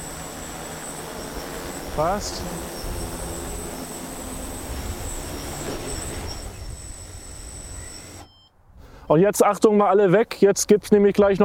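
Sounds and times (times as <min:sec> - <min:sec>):
thin high-pitched whine: 0:00.0 - 0:08.3
drone and docking box motors whirring: 0:00.0 - 0:08.4
speech: 0:02.0 - 0:02.8, 0:09.1 - 0:11.4.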